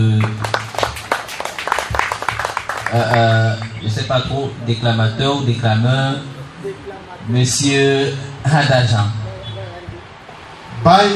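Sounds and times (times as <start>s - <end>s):
audience applause: 0.0s - 3.8s
speech: 2.9s - 6.3s, 7.2s - 9.2s, 10.8s - 11.1s.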